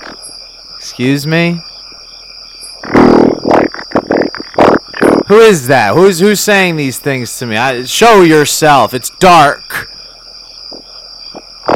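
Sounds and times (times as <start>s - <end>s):
speech: 0.9s - 1.7s, 5.3s - 9.6s
fart sound effect: 2.8s - 5.3s.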